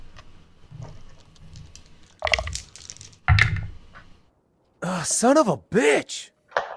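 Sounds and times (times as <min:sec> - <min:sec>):
dice clattering across a tabletop: 0:01.2 - 0:03.7
speech: 0:05.0 - 0:06.3.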